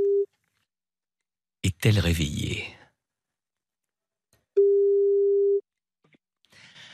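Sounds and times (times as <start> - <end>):
speech: 1.6 - 2.8
telephone ringing tone: 4.6 - 5.6.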